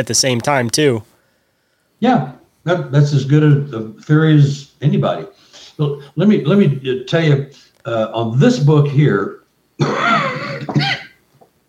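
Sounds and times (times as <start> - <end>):
speech: 0.0 - 1.1, 2.0 - 11.0
person coughing with a rasping throaty hack: 9.8 - 11.2.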